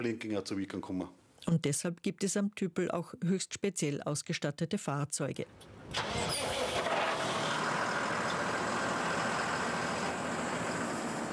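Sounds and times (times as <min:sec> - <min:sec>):
speech: 0:00.0 - 0:06.3
heavy tractor engine starting with a brief clatter: 0:05.6 - 0:11.3.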